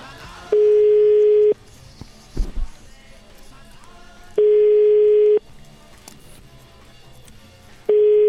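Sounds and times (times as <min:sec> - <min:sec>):
Italian telephone ringback tone while calling a restaurant in Rome: 0:00.6 - 0:01.6, 0:04.4 - 0:05.4, 0:07.9 - 0:08.2.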